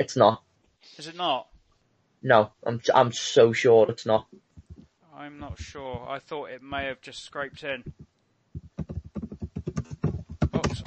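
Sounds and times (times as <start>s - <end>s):
speech: 0.0s - 1.5s, 2.2s - 4.4s, 5.2s - 8.1s
rapid typing on a computer keyboard: 7.5s - 10.8s.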